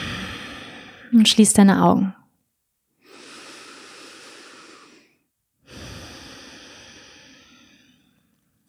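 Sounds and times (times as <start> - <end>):
slow deep breathing in and out in a seated meditation: 0.0 - 1.2, 3.0 - 8.4
speech: 1.1 - 2.2.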